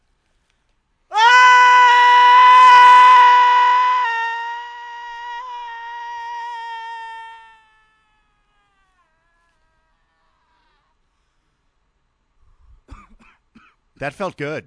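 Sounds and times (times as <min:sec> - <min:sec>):
person screaming into another person's ear: 0:01.1 - 0:10.7
speech: 0:14.0 - 0:14.6.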